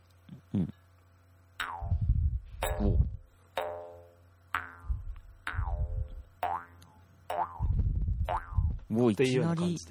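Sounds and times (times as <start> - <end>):
low droning hum: 0.0 - 9.9
speech: 0.5 - 0.8, 2.7 - 3.2, 8.9 - 9.9
jaw harp twanging held in the player's mouth: 1.6 - 8.9.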